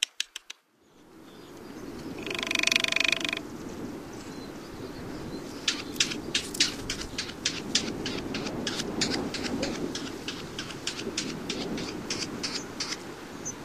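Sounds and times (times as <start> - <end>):
steady low background hiss: 0.0 - 13.6
ladder-backed woodpecker rattle call in North America: 2.1 - 3.4, 5.6 - 13.0.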